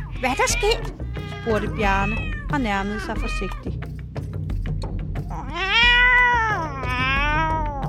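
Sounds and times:
several cats wailing loudly: 0:00.0 - 0:03.7, 0:05.3 - 0:07.8
speech: 0:00.2 - 0:03.8.

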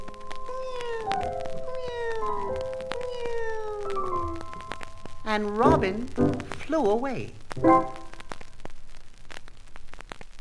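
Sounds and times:
cat meowing: 0:00.0 - 0:05.1
speech: 0:05.3 - 0:08.0.

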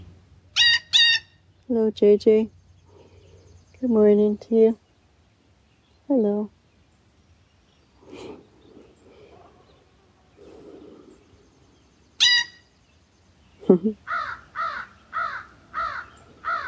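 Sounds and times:
speech: 0:01.7 - 0:02.6, 0:03.8 - 0:04.8, 0:06.1 - 0:06.6, 0:13.7 - 0:14.4
soft murmurs: 0:07.9 - 0:11.8
crow cawing: 0:14.1 - 0:16.6.

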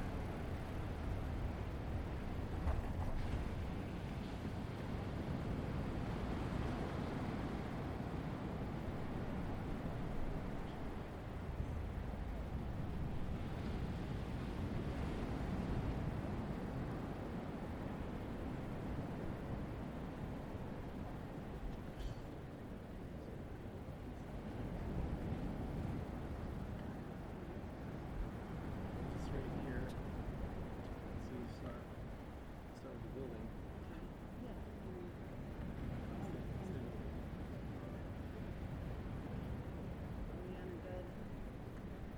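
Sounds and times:
dense low roar of surf and wind at a beach: 0:00.0 - 0:42.1
faint voices at a beach: 0:30.9 - 0:32.1, 0:32.7 - 0:38.8, 0:40.2 - 0:41.5.

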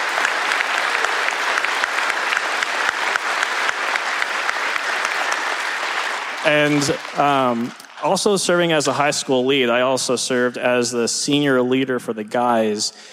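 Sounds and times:
audience applause: 0:00.0 - 0:09.9
speech: 0:06.4 - 0:13.1.

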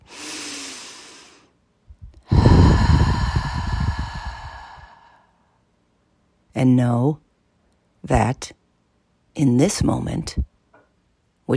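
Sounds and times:
slow deep breath: 0:00.0 - 0:01.6, 0:02.2 - 0:05.6
speech: 0:06.6 - 0:07.2, 0:08.0 - 0:08.6, 0:09.4 - 0:10.5.

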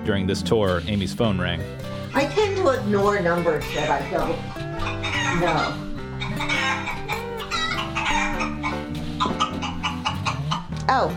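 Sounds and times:
speech: 0:00.0 - 0:07.2, 0:10.9 - 0:11.1
toy of cute little baby yellow chicks clucking and chirping: 0:02.2 - 0:10.9.

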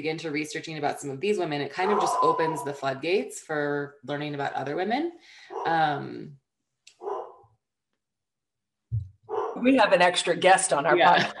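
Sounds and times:
speech: 0:00.0 - 0:06.4, 0:09.6 - 0:11.3
male dog barking: 0:01.8 - 0:02.6, 0:07.0 - 0:07.5, 0:09.3 - 0:09.6.

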